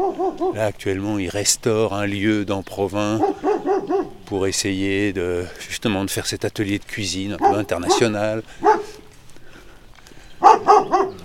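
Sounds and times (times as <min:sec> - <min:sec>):
dog barking at a walker passing by on a street: 0:00.0 - 0:00.6, 0:03.2 - 0:04.2, 0:07.3 - 0:09.1, 0:10.4 - 0:11.2
speech: 0:00.1 - 0:08.8.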